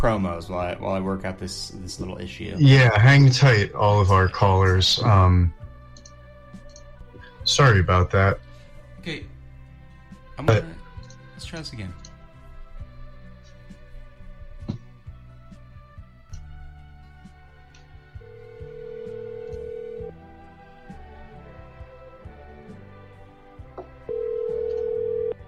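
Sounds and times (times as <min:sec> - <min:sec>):
speech: 0:00.0 - 0:05.6, 0:07.5 - 0:08.4, 0:09.0 - 0:09.3, 0:10.4 - 0:10.8, 0:11.4 - 0:12.0
music: 0:00.0 - 0:25.4
electronic ringback tone of an outgoing phone call: 0:18.2 - 0:20.2, 0:24.1 - 0:25.4.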